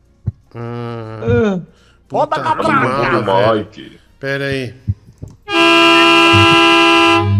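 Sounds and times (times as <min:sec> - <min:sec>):
speech: 0:00.5 - 0:04.9
laughter: 0:02.3 - 0:03.7
vehicle horn honking: 0:05.5 - 0:07.3.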